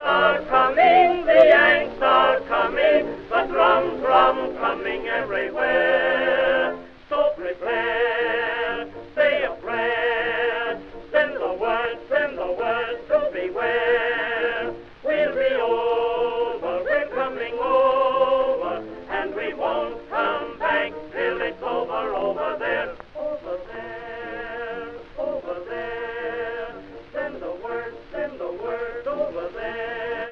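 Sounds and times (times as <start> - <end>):
baritone singing: 0.0 - 30.3.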